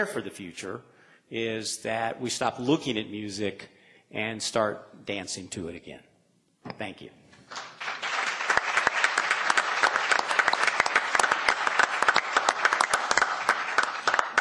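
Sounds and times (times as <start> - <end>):
speech: 0.0 - 7.7
sizable audience applause: 7.5 - 14.4.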